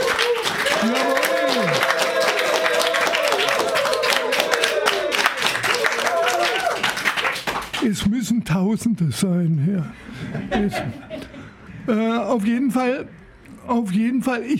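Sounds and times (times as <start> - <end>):
audience whoops and shouted voices: 0.0 - 6.8
live studio audience clapping in a radio studio: 0.0 - 7.8
speech: 7.9 - 11.3, 11.9 - 14.5
laughter: 10.0 - 11.6.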